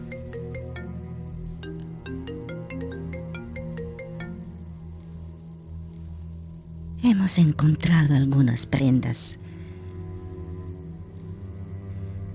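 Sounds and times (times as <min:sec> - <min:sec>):
telephone ringing with melodic electronic ringtone: 0:00.0 - 0:04.6
speech: 0:07.0 - 0:09.4.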